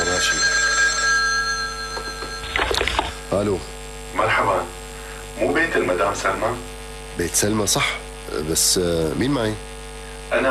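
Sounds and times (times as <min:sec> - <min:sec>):
telephone ringing in a home: 0:00.0 - 0:03.4
speech: 0:03.3 - 0:04.8, 0:05.4 - 0:09.7.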